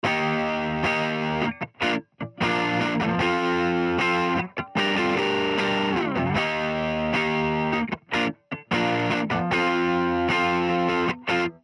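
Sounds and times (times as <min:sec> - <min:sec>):
guitar: 0:00.0 - 0:11.6.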